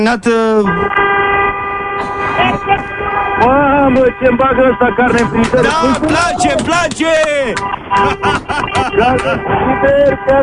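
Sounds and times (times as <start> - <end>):
speech: 0.0 - 1.2, 2.4 - 10.4
car horn honking: 0.5 - 10.4
laughter: 2.0 - 3.0, 4.6 - 10.3.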